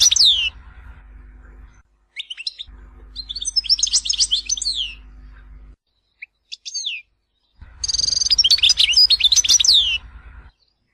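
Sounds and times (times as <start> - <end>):
European goldfinch twittering song: 0.0 - 0.6, 2.1 - 5.1, 5.9 - 10.9
low steady hum: 0.0 - 10.9.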